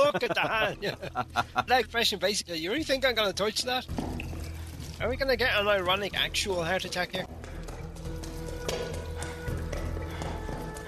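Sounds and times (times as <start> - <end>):
laughter: 0.0 - 1.8
speech: 0.1 - 4.2, 5.0 - 7.4
loud hard footsteps echoing on a solid floor in a cavernous corridor: 7.3 - 10.8.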